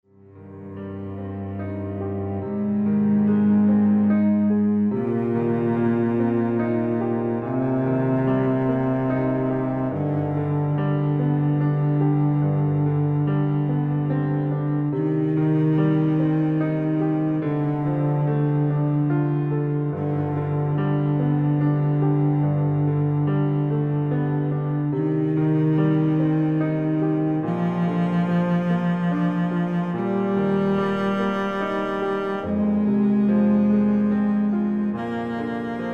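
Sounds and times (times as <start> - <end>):
cello: 0.0 - 35.9
piano: 0.0 - 35.9.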